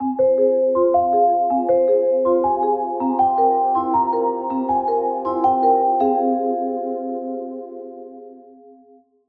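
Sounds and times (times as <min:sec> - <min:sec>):
mournful bell: 0:00.0 - 0:08.8.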